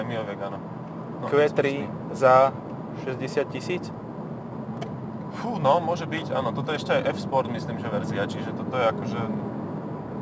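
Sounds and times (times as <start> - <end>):
speech: 0.0 - 4.0, 5.3 - 9.5
car engine revving while driving: 0.0 - 10.1.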